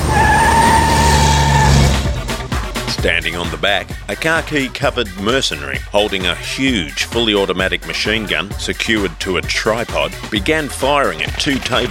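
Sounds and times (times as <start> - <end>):
pickup truck tires screeching on a cobblestone corner: 0.0 - 2.9
large pickup truck engine roaring around a cobblestone corner: 0.0 - 3.6
speech: 3.0 - 11.9.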